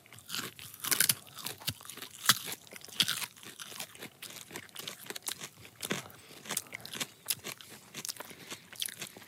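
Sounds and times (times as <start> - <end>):
biting and chewing a raw fibrous vegetable: 0.0 - 9.2.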